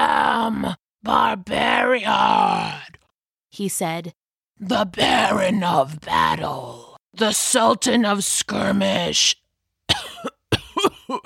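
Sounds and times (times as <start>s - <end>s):
speech: 0.5s - 2.9s, 3.5s - 10.1s, 11.1s - 11.2s
rough raspy gravelly cough: 9.9s - 11.2s.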